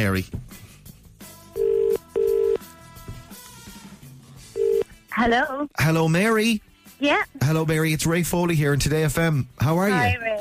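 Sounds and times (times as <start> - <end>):
speech: 0.0 - 0.6, 5.2 - 10.3
telephone ringback tone on an outgoing call: 1.6 - 2.6, 4.6 - 4.8.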